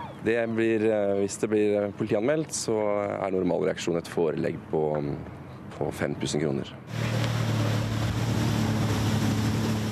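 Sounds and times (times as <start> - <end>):
speech: 0.2 - 7.4
jet ski engine droning on open water: 6.9 - 9.8
water splashing: 6.9 - 9.8.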